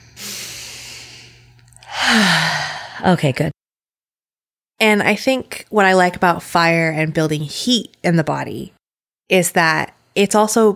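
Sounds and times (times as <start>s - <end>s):
deep breath taken: 0.0s - 3.0s
speech: 2.1s - 3.6s, 4.8s - 10.7s.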